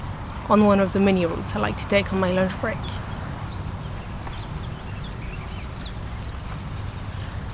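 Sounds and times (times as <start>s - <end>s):
footsteps walking outdoors by a field: 0.0s - 7.5s
small birds chirping faintly: 0.0s - 7.5s
speech: 0.5s - 3.1s.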